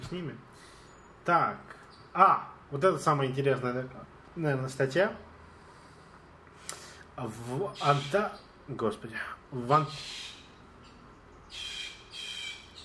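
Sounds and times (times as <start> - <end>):
speech: 0.1 - 0.7, 1.3 - 5.3, 7.2 - 10.3
birds squawking: 7.6 - 8.6, 9.6 - 12.8.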